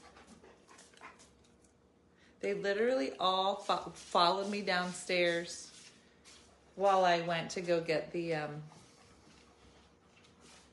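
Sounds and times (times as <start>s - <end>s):
dogs panting: 0.0s - 1.6s, 8.5s - 10.7s
speech: 2.4s - 5.7s, 6.8s - 8.8s.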